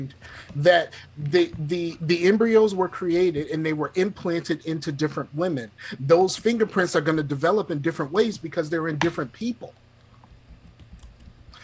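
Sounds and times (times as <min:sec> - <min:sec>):
speech: 0:00.0 - 0:09.8
typing on a computer keyboard: 0:10.3 - 0:11.6.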